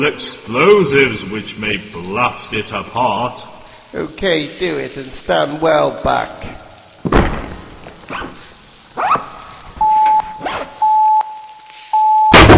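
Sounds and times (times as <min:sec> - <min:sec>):
speech: 0:00.0 - 0:07.2
head knocking into a wall in a passageway: 0:07.0 - 0:07.7
steady electronic beeps: 0:09.8 - 0:12.4.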